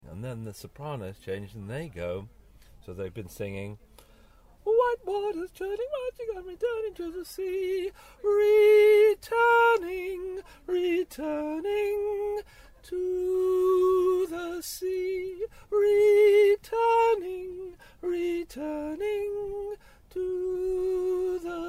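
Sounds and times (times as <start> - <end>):
soprano singing: 4.6 - 21.6.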